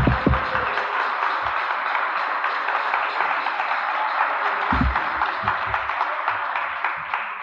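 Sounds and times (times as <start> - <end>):
low thumps: 0.0 - 0.7, 4.7 - 5.9
crowd applauding for a minister: 0.0 - 7.4.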